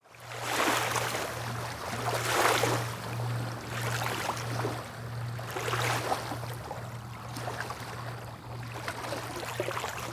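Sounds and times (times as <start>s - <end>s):
lake: 0.0s - 10.1s.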